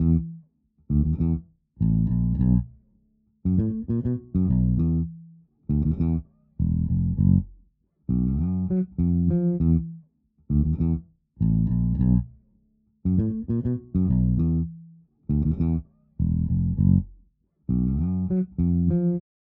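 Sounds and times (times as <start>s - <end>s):
funk groove on bass without compressor: 0.0s - 0.3s, 0.9s - 2.7s, 3.5s - 5.1s, 5.7s - 7.5s, 8.1s - 9.9s, 10.5s - 12.3s, 13.1s - 14.7s, 15.3s - 19.2s.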